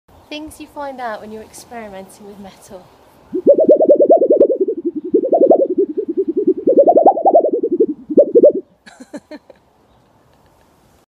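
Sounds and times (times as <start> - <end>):
wobble sound: 3.3 - 8.6.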